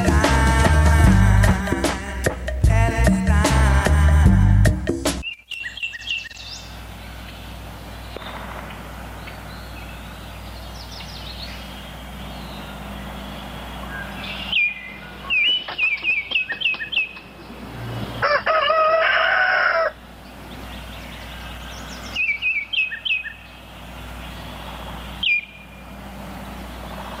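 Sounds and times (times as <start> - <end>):
steady low outdoor hum: 0.0 - 27.1
quick high bird chirps: 5.2 - 18.4, 20.2 - 27.1
rooster crowing in the early morning: 18.0 - 20.0.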